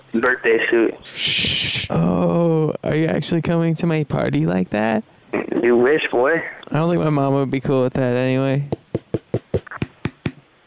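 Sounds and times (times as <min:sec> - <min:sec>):
speech: 0:00.1 - 0:08.8
sharp knocks in a steady even rhythm: 0:08.7 - 0:10.5.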